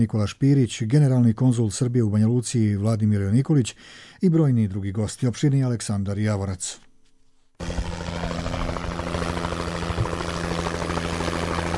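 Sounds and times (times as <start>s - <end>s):
speech: 0.0s - 6.9s
medical ambulance helicopter rotor and engine drone: 7.6s - 11.7s.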